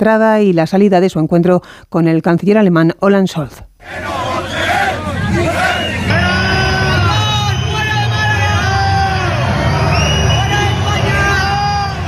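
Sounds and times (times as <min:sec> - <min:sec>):
speech: 0:00.0 - 0:04.4
large protest crowd shouting and booing: 0:03.8 - 0:12.0.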